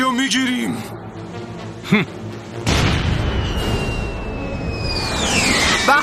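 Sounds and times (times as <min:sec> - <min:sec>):
speech: 0:00.3 - 0:01.2, 0:01.9 - 0:02.2
ship cannon blast fired as a warning shot at a pirate ship: 0:02.6 - 0:04.3
high descending whistle: 0:03.4 - 0:06.0.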